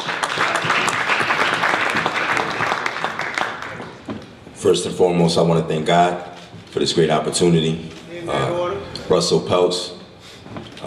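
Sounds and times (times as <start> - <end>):
crowd applauding a boxer: 0.0 - 4.1
speech: 4.6 - 10.0.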